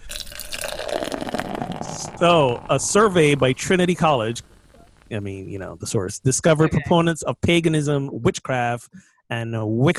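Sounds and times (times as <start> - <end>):
drink pouring into a glass: 0.0 - 5.2
speech: 2.2 - 4.5, 5.1 - 9.9.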